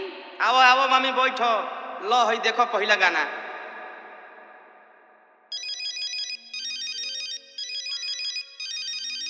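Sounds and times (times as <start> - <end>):
speech: 0.4 - 3.4
bright electronic phone ringtone: 5.5 - 9.2.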